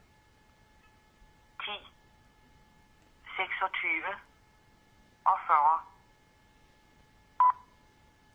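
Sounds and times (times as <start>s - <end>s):
recorded speaking clock voice over a telephone line: 1.6s - 1.9s, 3.3s - 4.3s, 5.3s - 6.0s
speech: 3.6s - 4.3s.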